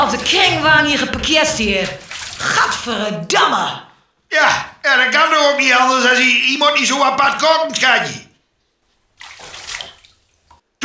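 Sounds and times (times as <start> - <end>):
bath water sloshing and splashing: 0.0 - 3.3, 9.0 - 10.6
speech: 0.2 - 8.2.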